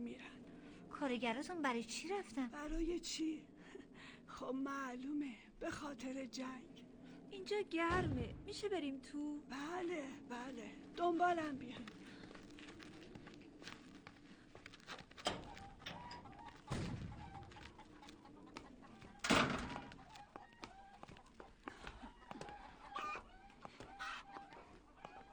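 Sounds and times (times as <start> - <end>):
speech: 0.0 - 12.0
footsteps shuffling: 10.4 - 25.3
many chickens clucking and squawking in an enclosed poultry hall: 15.4 - 25.3.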